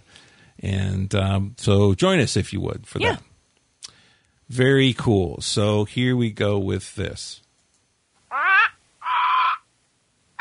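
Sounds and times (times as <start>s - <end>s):
speech: 0.6s - 3.3s, 4.5s - 7.4s
harsh crow-like bird squawk sound effect: 8.3s - 9.7s.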